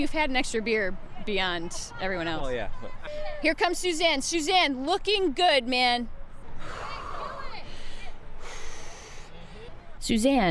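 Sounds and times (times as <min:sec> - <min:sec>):
speech: 0:00.0 - 0:06.8, 0:10.0 - 0:10.4
low murmur of noise: 0:00.0 - 0:10.4
deep heavy breathing: 0:06.6 - 0:09.8.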